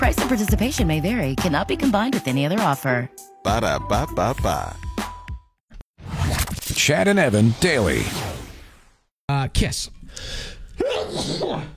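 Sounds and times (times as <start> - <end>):
speech: 0.0 - 4.8, 6.8 - 8.2, 9.5 - 11.7
sneeze: 10.8 - 11.7.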